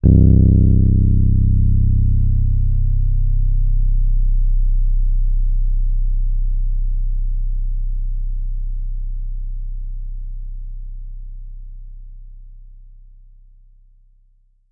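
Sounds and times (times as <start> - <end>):
Rhodes electric piano forte note C1: 0.0 - 9.0.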